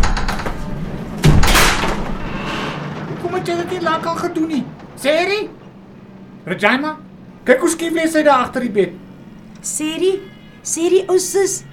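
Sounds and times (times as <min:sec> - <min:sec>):
door being kicked open: 0:00.0 - 0:05.0
steady noise: 0:00.0 - 0:11.7
speech: 0:03.5 - 0:05.6, 0:06.4 - 0:09.0, 0:09.6 - 0:11.7.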